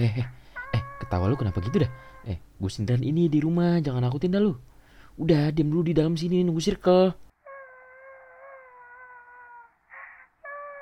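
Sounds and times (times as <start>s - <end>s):
speech: 0.0s - 7.2s
woman crying: 7.5s - 10.8s.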